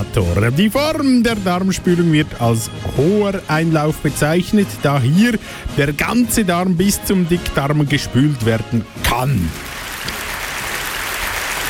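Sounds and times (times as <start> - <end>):
speech: 0.1 - 9.7
audience applause: 9.5 - 11.6.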